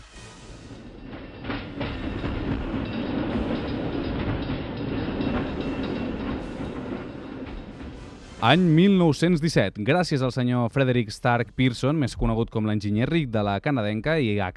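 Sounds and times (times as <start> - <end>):
train rumbling on rails: 0.0 - 9.6
train wheels clattering: 0.3 - 8.9
speech: 8.4 - 14.5.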